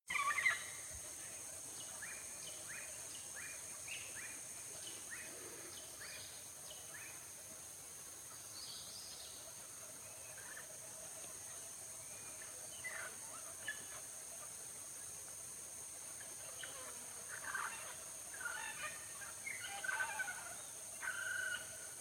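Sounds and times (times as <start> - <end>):
birds: 0.1 - 15.5, 16.1 - 21.9.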